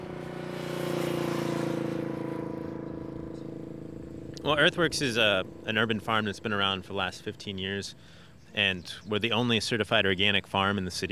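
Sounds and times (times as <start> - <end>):
car passing by on a road beside a garden in Detroit, Michigan: 0.0 - 4.4
speech: 4.4 - 11.0.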